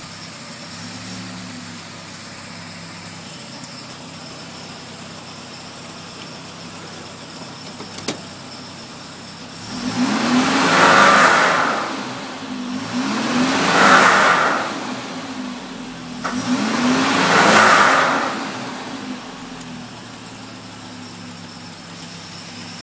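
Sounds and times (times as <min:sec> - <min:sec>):
Volvo car rattling: 0:06.1 - 0:21.7.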